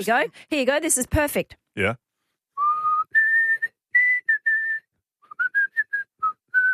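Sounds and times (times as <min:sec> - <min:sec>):
speech: 0:00.0 - 0:02.0
person whistling a melody: 0:02.6 - 0:06.7.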